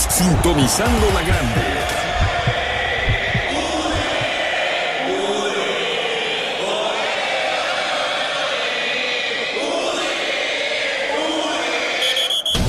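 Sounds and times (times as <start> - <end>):
dense wash of crowd-like noise: 0.0 - 12.6
speech: 0.2 - 2.0
deep throbbing heartbeat: 0.9 - 4.4.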